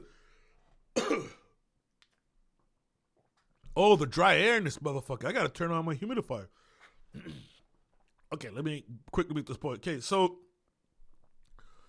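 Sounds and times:
person coughing: 0.9 - 1.6, 7.1 - 7.7
speech: 3.8 - 7.5, 8.3 - 10.4.

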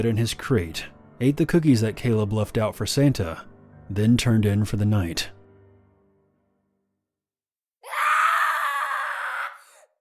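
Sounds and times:
speech: 0.0 - 5.4
piercing scream: 7.8 - 9.9.

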